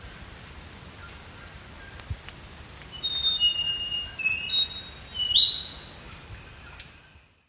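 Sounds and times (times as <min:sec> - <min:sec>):
steady high insect drone: 0:00.0 - 0:07.4
Thrush-like schiffornis whistles in the Eastern Lowlands of South America: 0:02.9 - 0:05.8.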